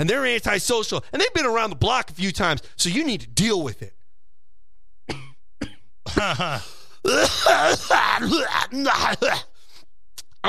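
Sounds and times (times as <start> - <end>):
speech: 0.0 - 4.0, 6.1 - 9.5
person coughing: 5.1 - 9.5
person hacking and groaning in a coughing fit: 6.1 - 9.5.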